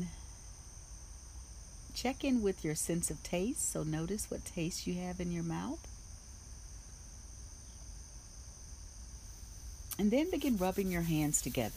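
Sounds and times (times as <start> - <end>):
crickets trilling: 0.0 - 11.7
low soft hum: 0.0 - 11.7
speech: 2.0 - 6.0, 10.0 - 11.7.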